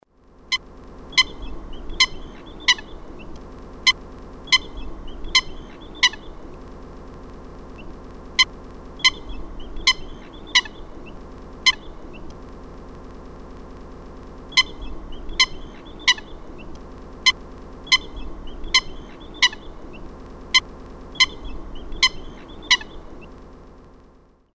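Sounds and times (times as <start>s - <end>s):
Eurasian coot calling: 0.5s - 6.5s, 7.8s - 12.3s, 14.5s - 23.3s.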